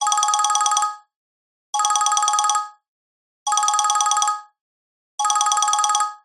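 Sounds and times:
voip call ringtone from multimedia software: 0.0 - 1.0, 1.8 - 2.8, 3.5 - 4.5, 5.2 - 6.2.

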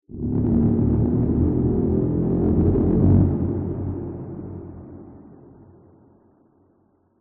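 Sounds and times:
low ascending distorted horror growl with reverb: 0.1 - 4.9.

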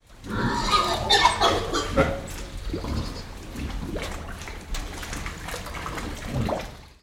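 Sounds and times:
wet sloppy mud inside a barn: 0.0 - 7.0
pig squealing inside a barn in wet sloppy mud: 0.2 - 3.4
pig grunting inside a barn in wet sloppy mud: 0.2 - 4.4.

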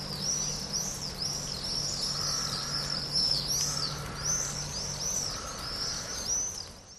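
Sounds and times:
low steady hum: 0.0 - 6.9
swallows twittering in spring forest in Cyprus: 0.0 - 6.9.

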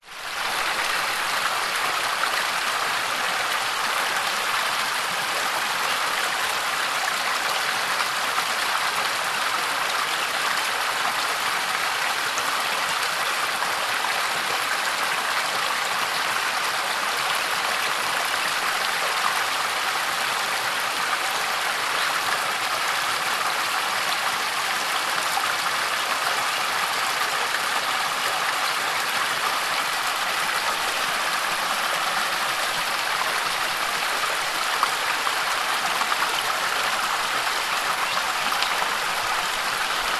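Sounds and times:
forest stream flowing: 0.0 - 40.1.

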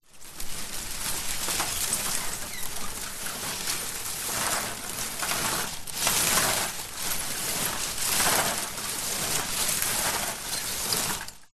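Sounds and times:
tree branch leaves rubbing and rustling against building or roof in wind: 0.0 - 11.5.

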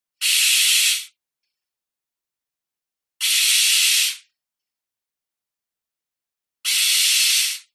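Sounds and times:
barn owl squawking: 0.2 - 1.1, 3.2 - 4.3, 6.6 - 7.7.

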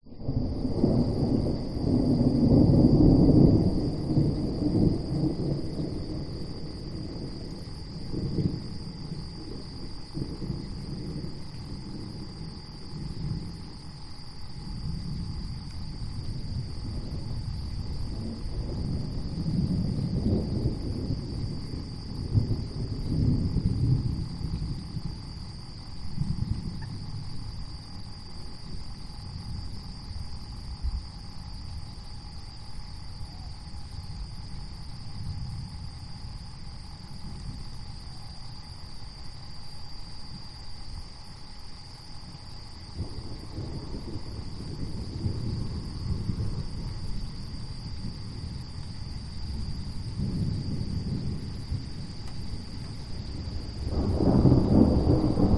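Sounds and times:
approaching thunderstorm at night: 0.0 - 55.5
blustery winds: 0.0 - 55.5
insects at night: 0.0 - 55.5.

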